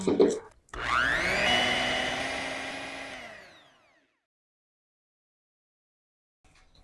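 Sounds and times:
blender grinding dried shrimp into powder: 0.7 - 4.2.

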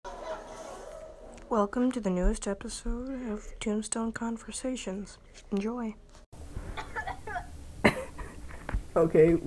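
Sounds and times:
speech: 1.5 - 6.0, 9.0 - 9.4
single sharp cough: 6.8 - 8.4.

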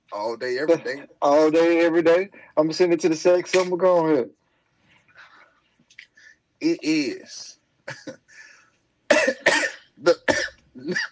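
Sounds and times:
speech: 0.2 - 4.4, 6.6 - 8.4, 9.2 - 11.0
person coughing: 7.9 - 8.3, 9.1 - 11.0.

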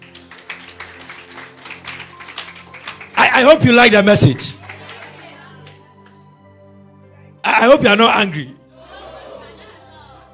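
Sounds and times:
audience clapping: 0.0 - 6.3
speech: 3.3 - 4.6, 7.6 - 8.6
laughter: 4.6 - 5.9, 8.7 - 10.3.

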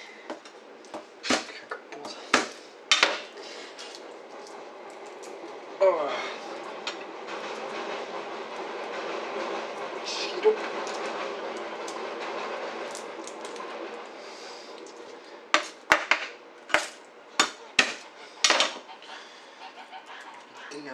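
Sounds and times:
steady hum: 0.0 - 20.9
garlic clove being smashed flat while cooking: 0.3 - 3.3, 15.6 - 18.8
low talking: 1.2 - 3.8, 5.6 - 7.1, 9.9 - 11.2, 20.4 - 20.9.

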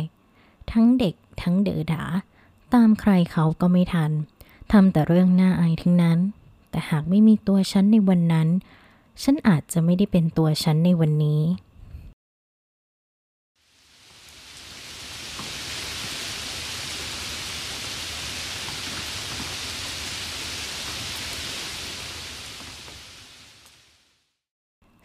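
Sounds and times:
speech: 0.7 - 11.6
dense rain pattering against a car window: 13.6 - 24.1.

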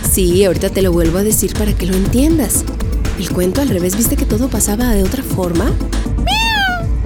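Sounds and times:
speech: 0.1 - 6.3
kitten meowing: 6.2 - 6.9.

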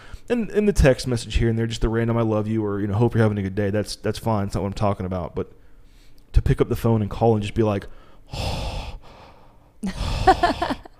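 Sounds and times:
speech: 0.3 - 5.6, 6.4 - 8.6, 9.8 - 10.7
heavy mouth breathing into a microphone: 7.9 - 10.7.

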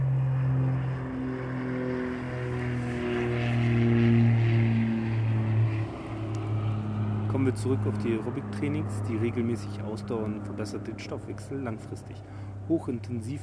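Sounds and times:
twin-propeller airplane droning overhead: 0.0 - 13.4
speech: 7.4 - 13.4.

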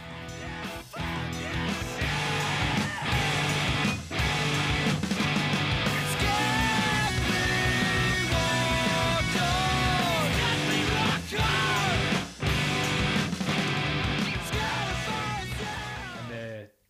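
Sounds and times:
doubled electric guitars chugging steady downstrokes: 0.0 - 16.3
drum hits: 1.9 - 15.2.

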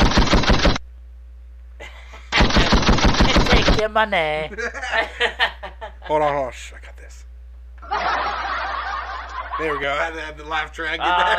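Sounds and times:
rapid gunshot sound effects played from a soundboard: 0.0 - 0.8, 2.3 - 3.9
speech: 3.8 - 5.4, 6.1 - 6.8, 9.6 - 11.3
laughter: 4.5 - 6.2, 7.8 - 11.3.

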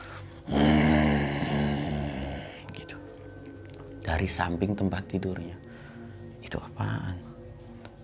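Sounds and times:
person's voice imitating a low rumbling animal growl: 0.5 - 2.5
speech: 4.1 - 5.7.

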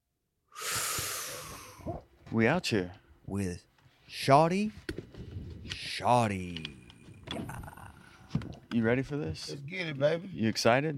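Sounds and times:
person inhaling a breath: 0.5 - 2.0
speech: 2.3 - 4.9, 6.0 - 7.4, 8.4 - 10.9.

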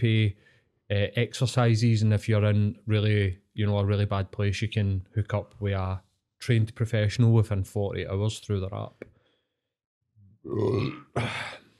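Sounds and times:
speech: 0.0 - 9.1, 10.4 - 11.6
man burping: 10.4 - 11.7
man's soft throaty grunt: 10.5 - 11.7.

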